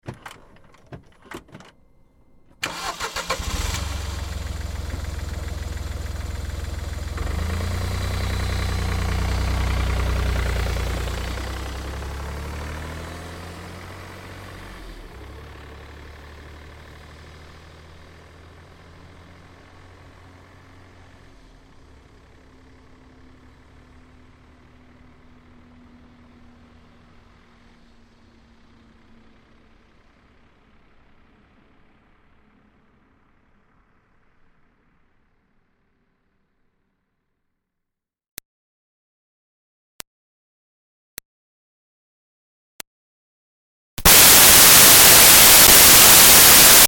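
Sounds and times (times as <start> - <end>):
2005 Smart Fortwo car starting and driving away slowly: 2.4 - 35.1, 44.1 - 46.8.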